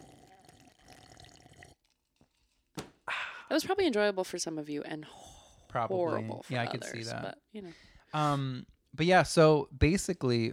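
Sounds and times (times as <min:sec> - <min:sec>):
person slurping water: 0:00.0 - 0:02.7
speech: 0:03.5 - 0:10.5.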